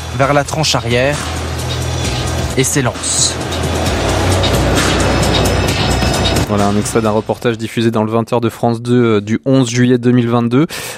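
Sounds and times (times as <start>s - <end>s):
speech: 0.2s - 1.4s, 2.6s - 3.7s, 6.5s - 10.9s
military transport aircraft engine drone in flight: 0.8s - 7.3s.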